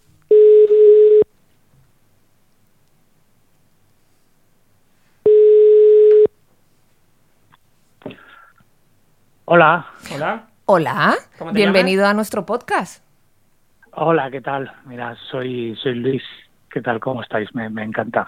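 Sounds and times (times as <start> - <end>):
telephone ringback tone: 0.3 - 1.3, 5.3 - 6.3
speech: 9.5 - 13.1, 14.0 - 18.2.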